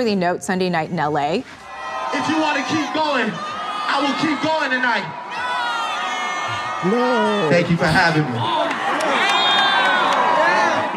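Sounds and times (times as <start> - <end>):
speech: 0.0 - 5.2, 6.8 - 8.8
large concert crowd booing loudly: 1.7 - 10.9.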